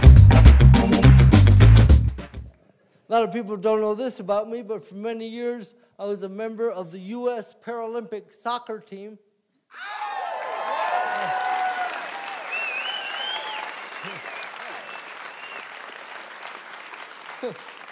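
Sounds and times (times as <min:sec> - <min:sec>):
audience applause with many hands clapping: 0:00.0 - 0:02.5, 0:10.0 - 0:17.9
speech: 0:03.1 - 0:10.1, 0:17.4 - 0:17.7
audience whoops and cheers: 0:09.7 - 0:15.6.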